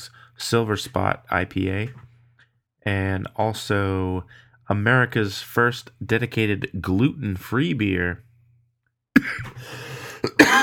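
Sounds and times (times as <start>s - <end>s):
speech: 0.5s - 2.1s, 2.8s - 8.3s, 9.2s - 10.5s
person at a beer tasting clearing the throat: 9.2s - 9.6s, 10.2s - 10.6s
person at a beer tasting coughing with something caught in the throat: 9.2s - 10.6s.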